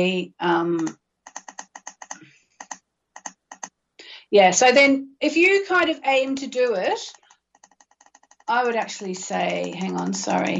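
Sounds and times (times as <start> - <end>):
speech: 0.0 - 1.0, 4.3 - 7.2, 8.5 - 10.5
computer mouse or keyboard clicks while looking something up online: 0.8 - 3.7, 7.0 - 10.5.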